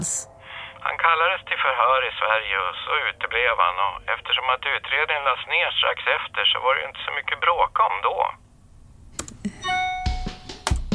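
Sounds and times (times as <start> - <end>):
speech: 1.0 - 8.4
email notification chime: 9.6 - 10.4.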